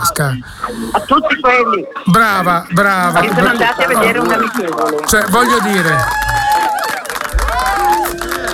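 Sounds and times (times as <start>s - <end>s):
laughter: 0.0s - 8.5s
speech: 0.2s - 6.3s
stadium spectators cheering at a friendly match: 2.0s - 8.5s
stadium spectators shouting: 3.1s - 8.5s
stadium spectators whistling: 3.1s - 8.5s.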